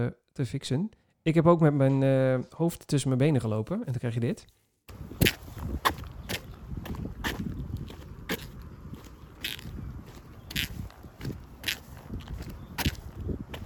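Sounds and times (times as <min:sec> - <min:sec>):
speech: 0:00.0 - 0:05.4
wet shoe soles squeaking while walking: 0:04.9 - 0:13.6.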